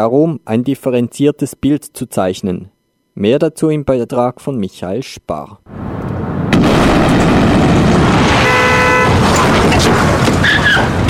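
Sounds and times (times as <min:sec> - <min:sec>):
speech: 0:00.0 - 0:05.8
explosion from a film scene of a suicide bombing on a facility: 0:05.7 - 0:11.0
heavy roaring rumble: 0:05.7 - 0:11.0
short car horn blaring: 0:08.3 - 0:09.2.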